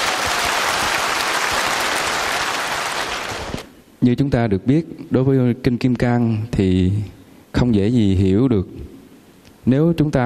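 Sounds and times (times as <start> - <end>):
audience applause at a Buddhist sutra talk: 0.0 - 3.7
speech: 4.0 - 8.9, 9.6 - 10.2.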